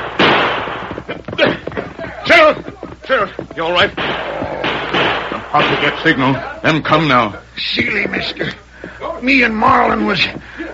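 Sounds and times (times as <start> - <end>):
gunshots fired as a signal at a mesquite patch: 0.0 - 1.7, 3.8 - 6.4
speech: 2.4 - 4.4, 5.5 - 8.6, 9.2 - 10.7.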